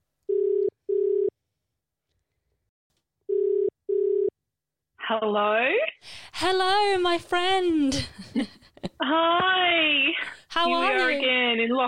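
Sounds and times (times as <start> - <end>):
ringback tone of a phone call placed from Sydney during lockdown: 3.3 - 4.3
speech: 5.1 - 11.8.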